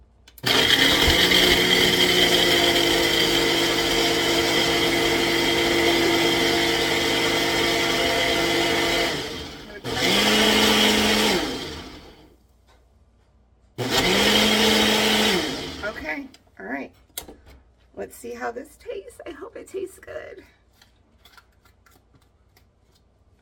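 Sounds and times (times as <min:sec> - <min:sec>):
blender blending a coffee drink mix: 0:00.4 - 0:12.3, 0:13.8 - 0:16.3.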